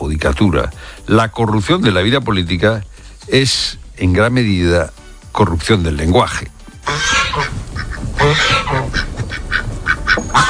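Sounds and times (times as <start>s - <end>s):
speech: 0.2s - 7.6s, 8.2s - 9.0s
several geese honking: 6.8s - 10.4s.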